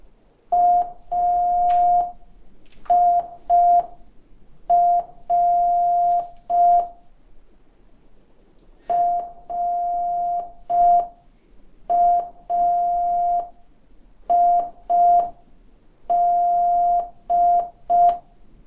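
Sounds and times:
slowed-down Morse code training beeps: 0.5s - 2.2s, 2.9s - 4.0s, 4.7s - 7.0s, 8.9s - 11.2s, 11.9s - 13.6s, 14.3s - 15.4s, 16.1s - 18.2s.

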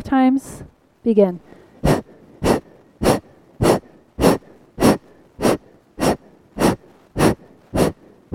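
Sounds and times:
speech: 0.1s - 1.5s
forceful sharp exhales in a breathing exercise: 1.5s - 8.3s.

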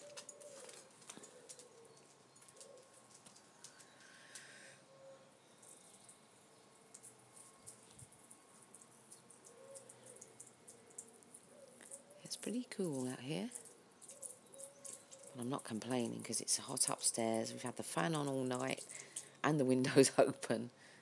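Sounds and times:
pigeons cooing: 0.0s - 5.3s, 9.3s - 12.4s, 13.5s - 15.5s
speech: 12.4s - 13.6s, 15.4s - 20.9s.

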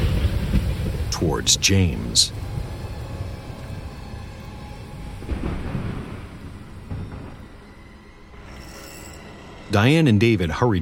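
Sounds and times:
thunder from a lightning strike over docks: 0.0s - 8.6s
speech: 1.2s - 2.5s, 9.7s - 10.7s.

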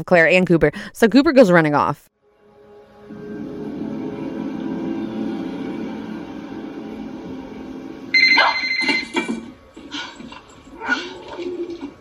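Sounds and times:
speech: 0.0s - 2.1s
handheld cordless phone ringing with warbling electronic bursts: 8.2s - 9.4s.

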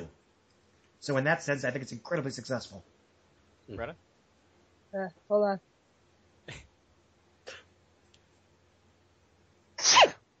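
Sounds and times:
speech: 1.0s - 2.9s, 3.7s - 4.1s, 4.9s - 5.7s, 6.5s - 6.7s
loud sneeze into microphone: 9.8s - 10.2s.

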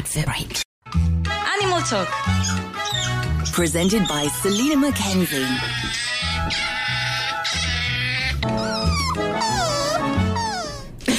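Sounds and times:
speech: 0.1s - 0.6s, 1.8s - 6.7s
otter calling with brays and squeals: 2.4s - 10.8s.

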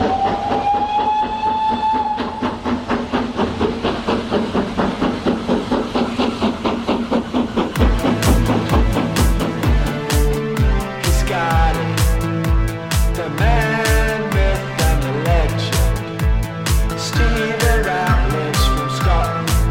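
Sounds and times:
train whistle: 0.0s - 2.6s
train wheels clattering over rail joints: 0.0s - 19.6s.

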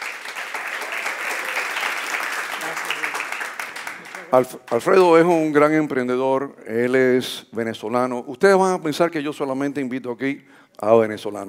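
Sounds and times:
crowd clapping as a guest entrepreneur is introduced: 0.0s - 5.7s
speech: 4.3s - 11.4s.

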